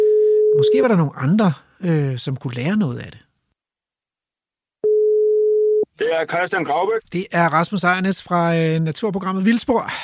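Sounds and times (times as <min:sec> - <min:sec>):
telephone ringback tone: 0:00.0 - 0:00.9, 0:04.8 - 0:05.8
speech: 0:00.6 - 0:03.3, 0:06.0 - 0:10.0.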